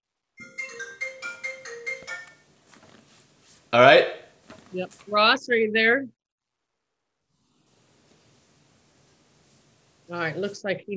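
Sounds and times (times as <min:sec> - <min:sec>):
telephone ringing with a bright repeating electronic melody: 0:00.4 - 0:02.5
speech: 0:03.7 - 0:06.2, 0:10.1 - 0:10.9.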